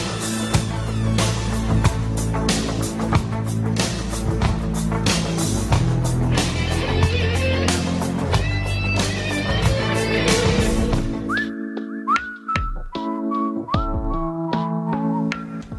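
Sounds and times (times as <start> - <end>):
busy instrumental backing: 0.0 - 15.7
person whistling a tune of sliding held notes: 11.2 - 15.7.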